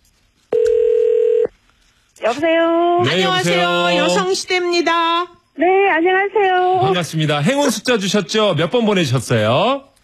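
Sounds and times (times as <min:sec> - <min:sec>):
telephone dialing tone: 0:00.5 - 0:01.5
speech: 0:02.3 - 0:09.9.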